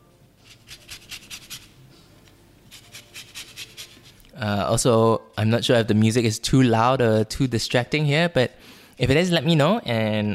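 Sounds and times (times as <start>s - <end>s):
lemon being zested into a big bowl: 0.4s - 1.8s, 2.7s - 4.3s
speech: 4.4s - 10.3s.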